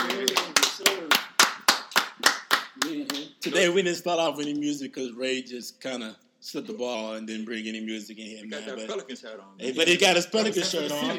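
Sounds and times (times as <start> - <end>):
hands clapping: 0.0 - 3.6
speech: 3.4 - 11.1.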